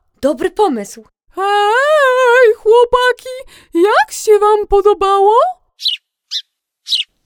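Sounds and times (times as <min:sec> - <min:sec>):
speech: 0:00.2 - 0:01.7, 0:02.7 - 0:07.0
sparrow chirping: 0:05.8 - 0:07.2.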